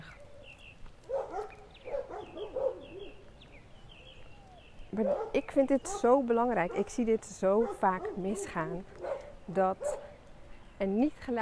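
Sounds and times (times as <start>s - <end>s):
faint birdsong chirping outdoors: 0.0s - 11.4s
dogs at houses barking at a passing dog: 0.1s - 3.4s, 4.9s - 10.2s
speech: 4.9s - 10.0s, 10.8s - 11.4s.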